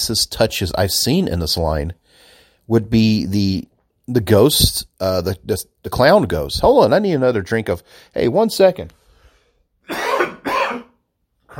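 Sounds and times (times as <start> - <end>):
speech: 0.0 - 9.0
harsh rasping coughs: 9.8 - 11.1.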